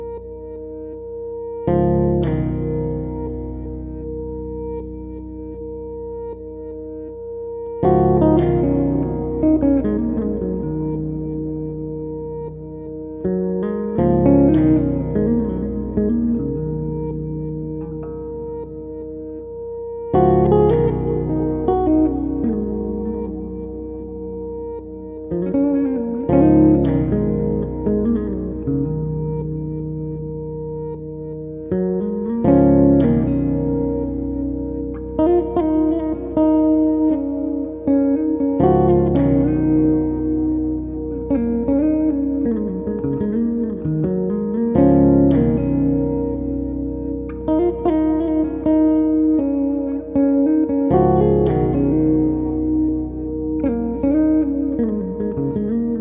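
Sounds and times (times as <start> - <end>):
bass guitar loops: 0.0 - 55.9.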